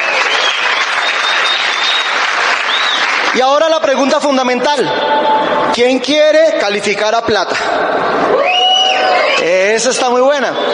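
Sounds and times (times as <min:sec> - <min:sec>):
audience applause: 0:00.0 - 0:04.0, 0:08.3 - 0:09.4
speech: 0:03.4 - 0:08.6, 0:09.4 - 0:10.7.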